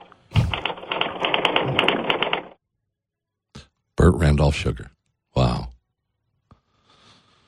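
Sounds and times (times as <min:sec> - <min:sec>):
typing on a Smith Corona typewriter: 0:00.3 - 0:02.6
speech: 0:04.0 - 0:05.6.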